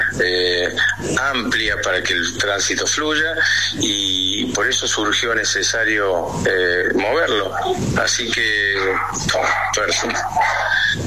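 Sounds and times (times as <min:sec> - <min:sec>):
steady low hum: 0:00.0 - 0:11.0
voices: 0:00.0 - 0:11.0
speech: 0:00.1 - 0:11.0
dogs barking, yipping and whimpering: 0:08.8 - 0:11.0.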